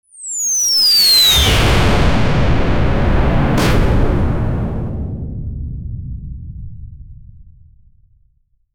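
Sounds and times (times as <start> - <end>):
sci-fi space ship weapon shooting: 1.6 - 5.1.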